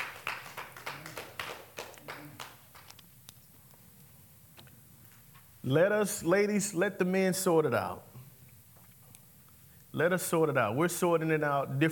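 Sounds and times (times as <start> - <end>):
small audience clapping at the end of a teaching: 0.0 - 3.0
speech: 5.7 - 8.1, 10.0 - 11.8.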